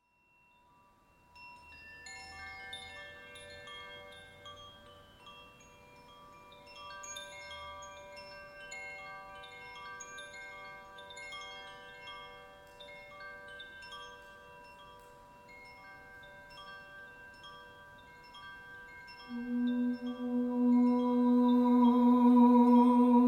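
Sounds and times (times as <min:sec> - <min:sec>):
carillon in G: 0:00.0 - 0:23.2
voice: 0:19.3 - 0:23.2.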